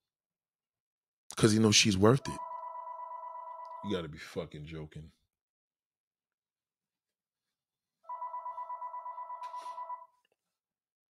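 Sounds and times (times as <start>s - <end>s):
speech: 1.4s - 2.5s, 3.8s - 5.2s
studio telephone ringing: 2.1s - 3.9s, 8.1s - 10.1s.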